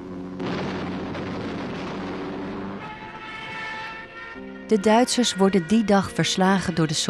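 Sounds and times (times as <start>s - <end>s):
bomb explosions shelling Stalingrad during the Second World War: 0.0s - 3.9s
German artillery fire shelling Stalingrad during the Second World War: 0.4s - 4.0s
speech: 4.7s - 7.0s.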